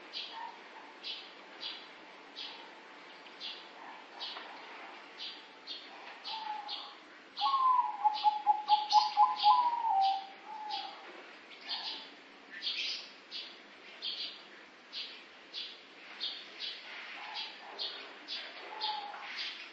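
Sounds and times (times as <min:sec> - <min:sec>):
dove cooing: 0:06.2 - 0:11.0, 0:18.7 - 0:19.3.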